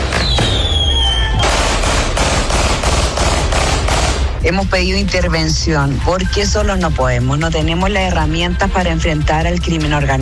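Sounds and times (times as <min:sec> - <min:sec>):
fireworks banging at a symbolic wake: 0:00.0 - 0:04.5
shrill firework whistle: 0:00.1 - 0:01.6
gunshots fired into the air at a symbolic wake: 0:01.4 - 0:04.4
speech: 0:04.4 - 0:10.2.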